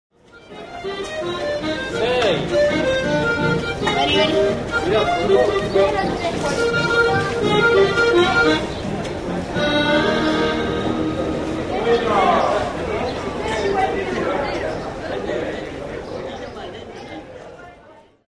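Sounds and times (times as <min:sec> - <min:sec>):
street accordionist playing in a pedestrian street: 0:00.2 - 0:13.0
street musicians playing in a pedestrian street: 0:00.2 - 0:17.5.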